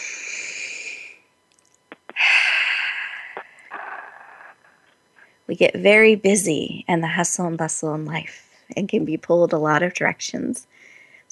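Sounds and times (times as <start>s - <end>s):
person taking a slow deep breath: 0.0s - 1.2s, 2.1s - 5.3s, 10.7s - 11.3s
speech: 5.5s - 11.3s.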